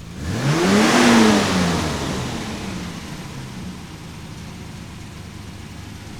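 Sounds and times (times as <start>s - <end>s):
car engine idling: 0.0s - 6.1s.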